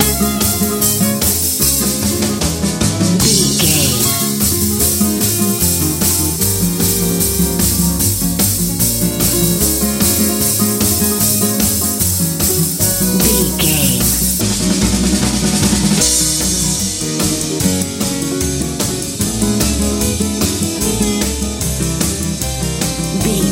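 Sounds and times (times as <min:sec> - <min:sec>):
Texas blues music: 0:00.0 - 0:23.4.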